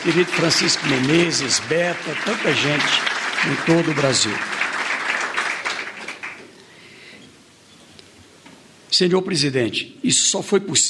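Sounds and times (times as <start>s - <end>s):
speech: 0.0s - 4.6s, 9.0s - 10.8s
audience applauding: 0.0s - 6.6s.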